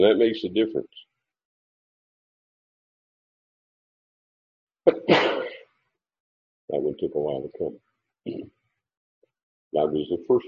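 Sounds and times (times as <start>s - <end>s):
speech: 0.0s - 1.1s, 6.7s - 8.6s, 9.7s - 10.4s
sneeze: 4.9s - 5.7s.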